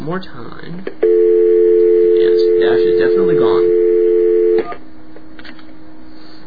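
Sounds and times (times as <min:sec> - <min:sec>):
speech: 0:00.0 - 0:01.2, 0:02.6 - 0:03.8
steady electronic telephone tone: 0:01.0 - 0:04.8.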